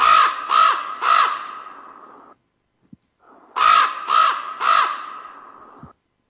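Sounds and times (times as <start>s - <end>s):
raven croaking with cave-like echo: 0.0s - 2.4s, 3.2s - 5.9s.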